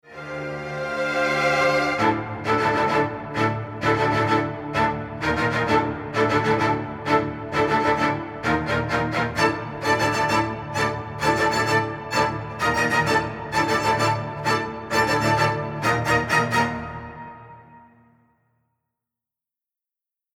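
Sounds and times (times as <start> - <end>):
strings playing kizami rhythm: 0.2 - 17.5.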